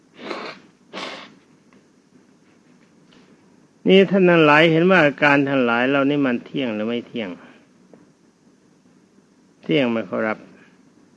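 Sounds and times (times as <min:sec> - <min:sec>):
nose blowing: 0:00.2 - 0:01.4
speech: 0:03.9 - 0:07.4, 0:09.7 - 0:10.5.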